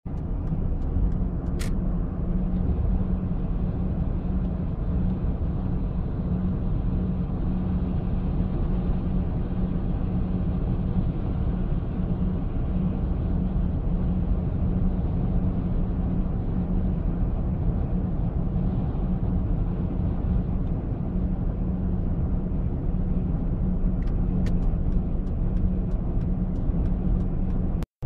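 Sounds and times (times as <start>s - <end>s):
car journey ambience: 0.1s - 28.0s.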